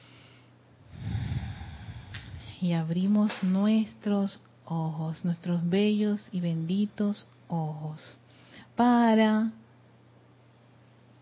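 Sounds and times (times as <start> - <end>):
long deep nasal breath: 0.0 - 2.6
speech: 2.6 - 8.2, 8.8 - 9.6.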